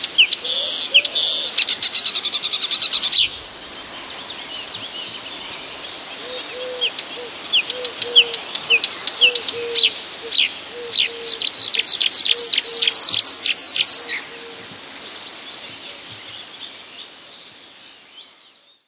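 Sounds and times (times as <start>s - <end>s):
marsh warbler imitating whinchat calls: 0.1s - 3.4s, 6.2s - 14.6s.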